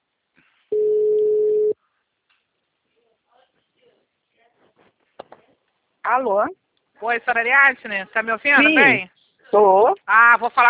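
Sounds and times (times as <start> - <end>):
telephone ringback tone: 0.7 - 1.8
speech: 6.1 - 10.6.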